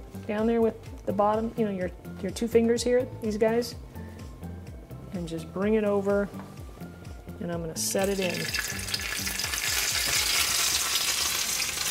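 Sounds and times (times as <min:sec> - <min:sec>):
speech: 0:00.3 - 0:03.9, 0:05.2 - 0:06.5, 0:07.4 - 0:08.7
hot oil splattering and sizzling as meat and cheese fry in a pan: 0:08.0 - 0:11.8.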